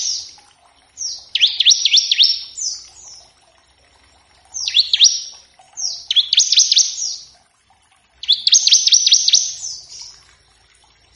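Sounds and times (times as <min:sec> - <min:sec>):
Bar-winged prinia song of quick downward-sweeping notes: 0:01.0 - 0:03.3, 0:04.6 - 0:07.3, 0:08.2 - 0:10.2.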